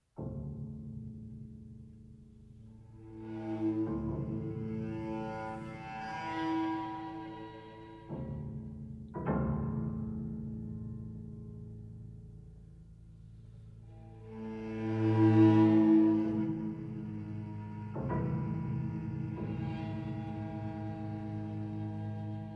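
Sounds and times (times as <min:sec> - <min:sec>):
cello: 0:00.0 - 0:22.5
piano: 0:00.0 - 0:22.5
violin: 0:02.6 - 0:09.5, 0:13.8 - 0:22.5.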